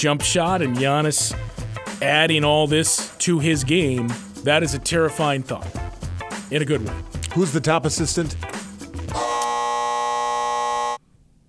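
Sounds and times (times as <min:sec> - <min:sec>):
speech: 0:00.0 - 0:05.9, 0:06.5 - 0:09.2
game-show buzzer: 0:09.1 - 0:11.0.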